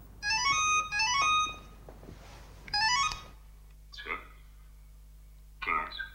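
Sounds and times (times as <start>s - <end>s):
telephone ringing with an electronic trill in a home: 0.2s - 1.8s, 2.7s - 3.4s.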